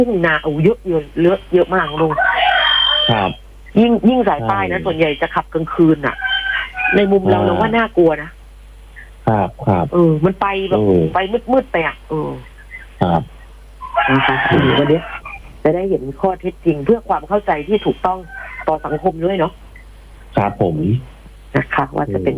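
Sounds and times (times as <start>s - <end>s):
speech: 0.0s - 2.3s, 3.1s - 6.3s, 6.9s - 8.4s, 9.3s - 13.4s, 14.0s - 19.6s, 20.4s - 22.3s
rooster crowing over a phone line: 1.8s - 3.4s, 5.8s - 7.8s, 13.8s - 15.5s, 17.7s - 19.5s.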